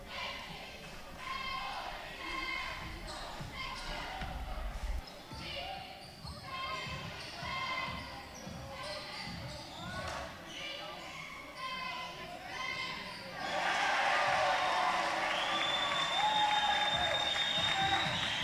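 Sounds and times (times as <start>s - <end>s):
recorded crowd noise played from the broadcast station: 0.0s - 18.4s
sneaker squeaks: 2.4s - 4.2s, 5.0s - 13.4s, 16.8s - 18.4s.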